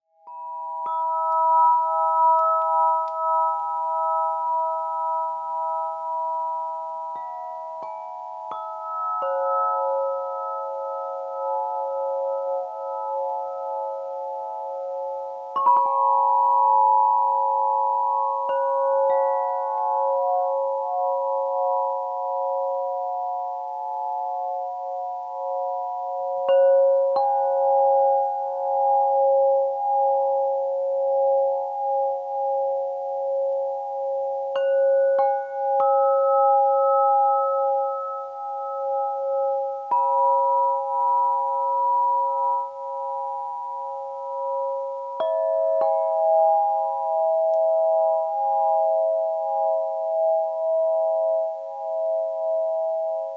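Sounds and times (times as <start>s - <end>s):
crystal harp in C sharp: 0.2s - 53.3s.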